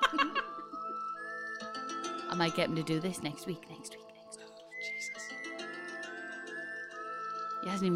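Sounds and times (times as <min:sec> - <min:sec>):
musical backing: 0:00.0 - 0:07.9
speech: 0:02.3 - 0:04.1, 0:07.6 - 0:07.9
person whistling a tune: 0:04.7 - 0:07.8.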